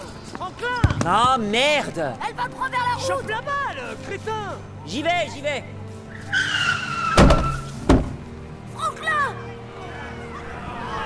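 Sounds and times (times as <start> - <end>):
speech: 0.5 - 5.8
car tire squeal: 6.1 - 7.9.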